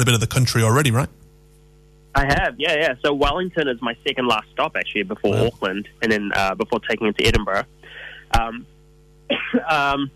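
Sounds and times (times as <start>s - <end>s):
speech: 0.0s - 1.2s, 2.1s - 8.7s, 9.3s - 10.1s
faint steady electrical hum: 0.0s - 10.1s
person two weeks out of COVID coughing: 9.3s - 9.8s
person clearing throat with rasping throat-clearing cough: 9.3s - 9.9s.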